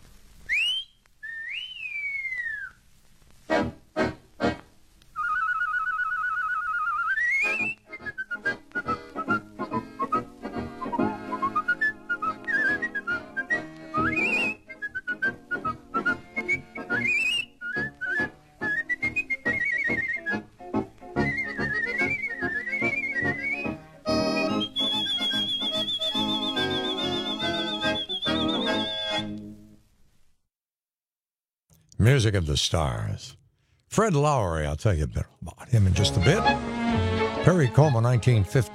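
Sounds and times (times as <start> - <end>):
warbling whistled melody with trills on a played record: 0.5 - 2.8, 5.2 - 20.5, 21.1 - 29.3
speech: 32.1 - 33.4, 34.0 - 38.7.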